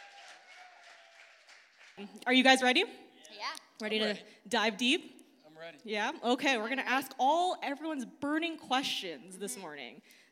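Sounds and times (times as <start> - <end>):
audience applauding: 0.0 - 2.1
speech: 2.0 - 3.0, 3.8 - 10.2.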